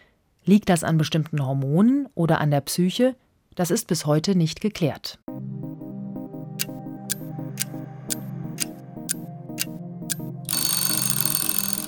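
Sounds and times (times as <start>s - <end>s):
speech: 0.5s - 5.3s
clock ticking: 5.3s - 11.8s
rattling alarm clock bell ringing: 6.4s - 11.8s.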